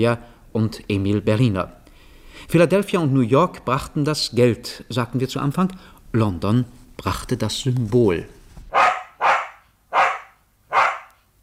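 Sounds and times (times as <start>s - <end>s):
speech: 0.0s - 1.8s, 2.4s - 8.4s
white terrier barking: 8.7s - 11.2s.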